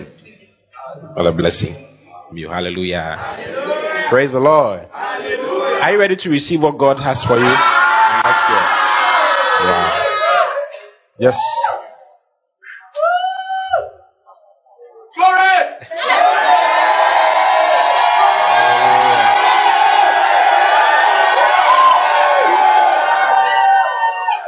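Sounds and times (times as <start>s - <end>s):
speech: 1.2s - 8.5s, 11.2s - 11.8s
large crowd shouting and cheering: 3.2s - 4.3s, 4.9s - 6.1s, 7.2s - 10.7s, 15.2s - 24.4s.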